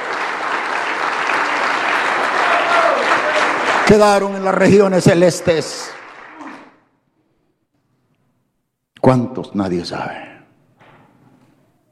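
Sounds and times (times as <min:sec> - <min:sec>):
crowd at a sermon applauding: 0:00.0 - 0:07.0
person whooping: 0:02.4 - 0:03.6, 0:06.2 - 0:06.8
speech: 0:03.9 - 0:06.0, 0:09.1 - 0:10.3.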